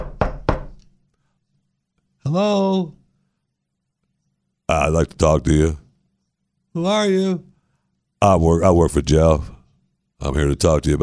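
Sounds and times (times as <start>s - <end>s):
two firm knocks on a door: 0.0s - 0.8s
speech: 2.2s - 3.0s, 4.7s - 5.8s, 6.8s - 7.5s, 8.2s - 9.6s, 10.2s - 11.0s.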